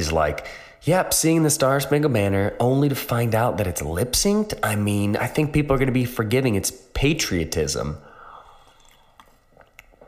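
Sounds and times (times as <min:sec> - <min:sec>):
speech: 0:00.0 - 0:08.1
person sipping water: 0:08.3 - 0:10.0.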